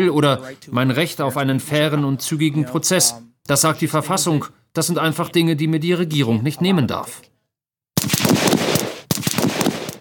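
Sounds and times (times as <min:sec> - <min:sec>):
speech: 0:00.0 - 0:07.3
automatic gunfire during weapons training: 0:08.0 - 0:09.9.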